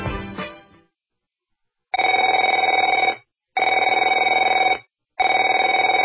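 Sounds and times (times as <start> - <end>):
telephone ringing: 2.0 - 6.0.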